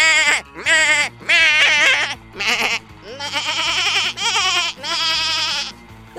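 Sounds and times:
goat screams played like notes on a keyboard: 0.0 - 6.1.

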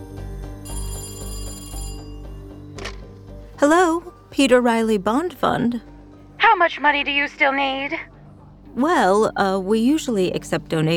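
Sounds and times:
telephone bell ringing as a call comes in: 0.6 - 2.7
speech: 3.6 - 5.9, 6.6 - 8.1, 8.8 - 10.9.

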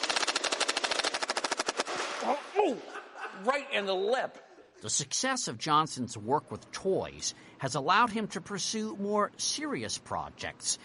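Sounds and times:
Nerf toy gun firing foam darts: 0.0 - 2.2
speech: 2.2 - 10.8
laughter: 2.6 - 3.8.

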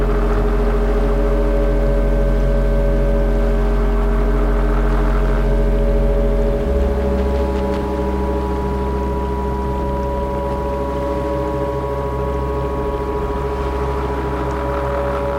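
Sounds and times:
boat engine droning loud with deep rumble: 0.0 - 15.3.

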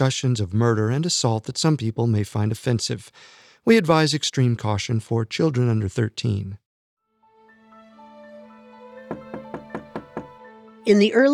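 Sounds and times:
speech: 0.0 - 6.6, 10.8 - 11.3
firm knocking on a front door: 9.1 - 10.4.

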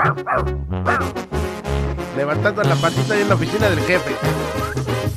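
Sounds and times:
dogs barking and yipping: 0.0 - 1.2
speech: 0.0 - 1.2, 2.2 - 5.0.

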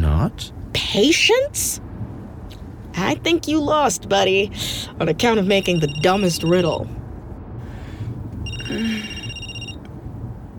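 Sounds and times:
low rumbling room background: 0.0 - 10.5
speech: 0.2 - 1.9, 3.0 - 7.0, 8.7 - 9.2
telephone ringing: 5.4 - 6.9, 8.4 - 9.9.

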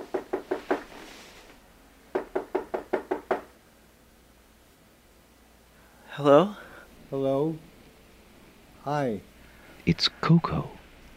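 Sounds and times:
rapid knocking on a janitor's closet door: 0.0 - 0.9, 2.1 - 3.5
speech: 6.2 - 7.7, 8.8 - 10.8.

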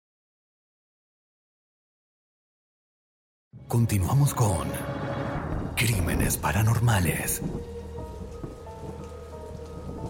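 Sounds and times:
speech: 3.6 - 5.0, 5.8 - 7.8
deep rolling rumble of thunder: 5.4 - 10.0
steady dense rainfall over a city: 5.5 - 10.0.

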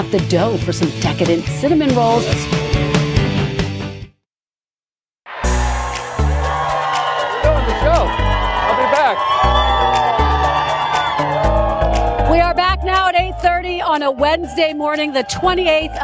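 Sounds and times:
speech: 0.0 - 3.0, 13.9 - 16.0
pounding upbeat music: 0.0 - 4.0, 5.3 - 16.0
high shouts: 5.3 - 16.0
studio audience cheering and whooping: 5.3 - 16.0.

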